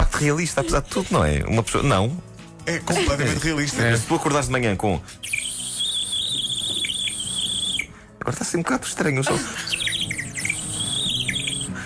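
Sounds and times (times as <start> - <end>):
speech: 0.2 - 5.4, 8.3 - 9.8
birdlike chirping and warbling made by blowing into a plastic case: 5.2 - 8.0, 9.6 - 11.8.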